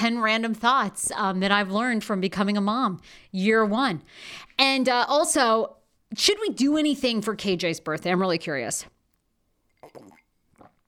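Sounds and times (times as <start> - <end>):
speech: 0.0 - 9.0
sipping water: 9.1 - 10.8
slurping: 9.7 - 10.8.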